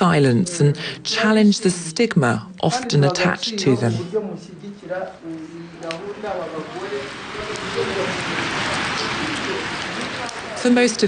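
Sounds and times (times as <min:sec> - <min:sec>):
speech: 0:00.0 - 0:09.8, 0:10.6 - 0:11.0
indistinct voices murmuring: 0:03.9 - 0:11.0
rain drumming on a hall roof: 0:04.6 - 0:11.0.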